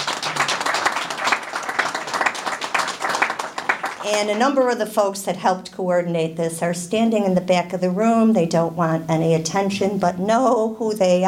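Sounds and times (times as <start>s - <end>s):
room full of people applauding: 0.0s - 4.8s
speech: 4.0s - 11.2s.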